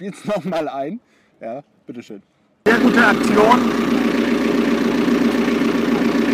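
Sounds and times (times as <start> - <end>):
speech: 0.0 - 5.8
unmuffled boat engine idling: 2.7 - 6.3.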